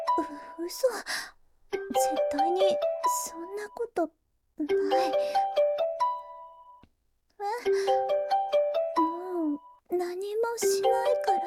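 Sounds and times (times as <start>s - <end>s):
speech: 0.2s - 5.7s, 7.4s - 8.4s, 9.9s - 11.4s
phone ringing with a bright electronic melody: 1.8s - 3.4s, 4.7s - 6.8s, 7.7s - 9.8s, 10.7s - 11.4s.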